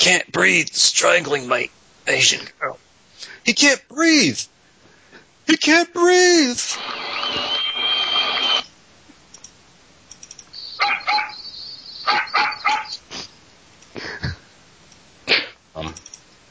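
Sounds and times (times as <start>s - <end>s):
speech: 0.0s - 4.5s, 5.5s - 7.5s
broadband noise rush: 0.0s - 16.5s
faint clicking: 8.6s - 10.6s, 13.8s - 14.0s, 14.9s - 15.1s, 15.9s - 16.4s
dog barking and yipping: 10.8s - 13.0s.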